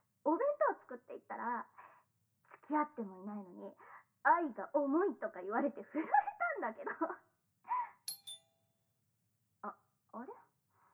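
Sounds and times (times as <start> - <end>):
speech: 1.2 - 1.8, 2.7 - 7.3, 9.6 - 10.4
doorbell two-note ding-dong chime: 8.1 - 8.4.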